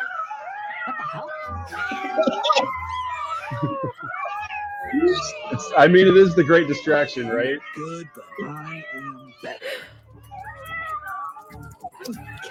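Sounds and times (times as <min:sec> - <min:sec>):
cats meowing and yowling in cat videos being played: 0:00.0 - 0:12.4
laughter: 0:00.8 - 0:04.2, 0:04.8 - 0:08.6
speech: 0:00.8 - 0:09.7, 0:12.0 - 0:12.4.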